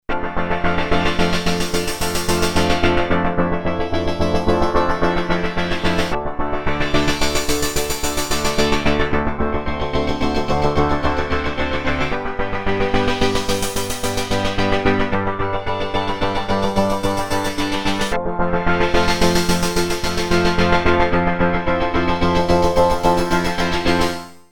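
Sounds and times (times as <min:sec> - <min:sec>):
Yamaha SY99 sequenced synth: 0:00.1 - 0:24.4.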